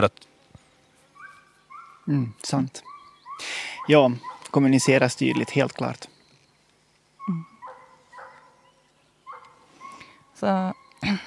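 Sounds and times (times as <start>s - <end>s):
speech: 0.0s - 0.3s, 2.1s - 6.1s, 7.3s - 7.5s, 10.4s - 11.2s
dog barking and whining: 1.2s - 2.1s, 2.8s - 5.7s, 7.2s - 8.7s, 9.3s - 11.0s.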